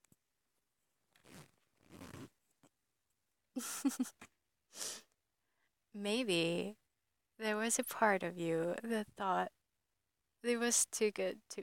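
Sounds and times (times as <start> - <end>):
trouser zipper being undone: 1.1 - 2.4
speech: 3.6 - 4.9, 6.0 - 6.8, 7.4 - 9.6, 10.4 - 11.6.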